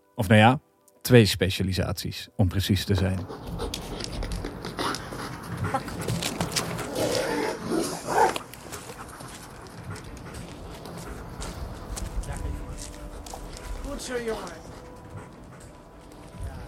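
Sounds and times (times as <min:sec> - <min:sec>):
speech: 0:00.2 - 0:03.8
dual-purpose commando corps tracking and biting dog panting: 0:03.0 - 0:07.2, 0:08.0 - 0:16.6.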